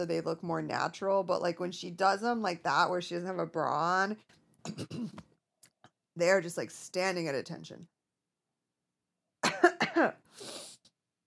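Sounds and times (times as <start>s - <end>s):
speech: 0.0s - 5.3s, 6.2s - 7.9s, 10.0s - 10.6s
breathy raspy throat clearing: 4.7s - 5.2s
person coughing: 4.7s - 5.2s, 9.4s - 10.3s.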